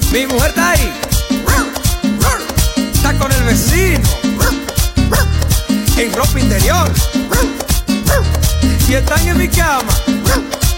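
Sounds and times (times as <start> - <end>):
speech: 0.1 - 1.1, 3.1 - 5.4, 6.0 - 10.5
dog barking answering a phone call: 1.4 - 2.6, 4.3 - 5.4, 7.3 - 8.3, 10.2 - 10.6.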